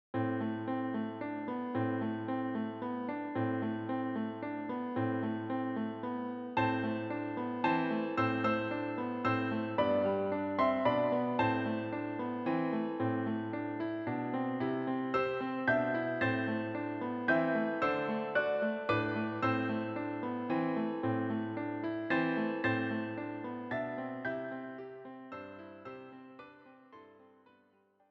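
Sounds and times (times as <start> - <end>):
piano played four-handed: 0.2 - 27.8.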